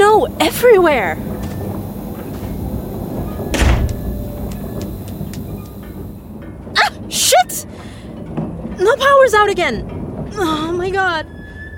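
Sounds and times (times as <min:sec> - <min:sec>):
steady hiss: 0:00.0 - 0:07.8
faint ticks: 0:00.1 - 0:06.2
speech: 0:00.2 - 0:01.4, 0:07.1 - 0:07.9, 0:08.8 - 0:11.3
kitchen door slamming shut: 0:03.3 - 0:04.7.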